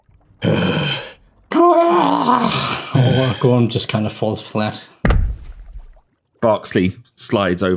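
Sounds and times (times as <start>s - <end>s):
long wavering groan of exhaustion: 0.4s - 3.5s
speech: 2.0s - 5.2s, 6.4s - 7.7s.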